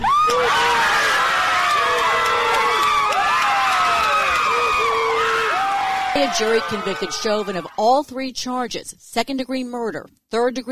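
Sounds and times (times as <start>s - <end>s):
large crowd cheering outside a courthouse at a guilty verdict: 0.0s - 8.1s
speech: 6.2s - 10.6s.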